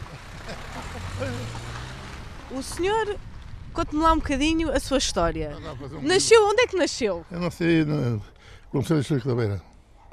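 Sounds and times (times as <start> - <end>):
vehicle rumbling past on a potholed road on the south bank of the Tagus: 0.0 - 6.2
speech: 2.5 - 9.7.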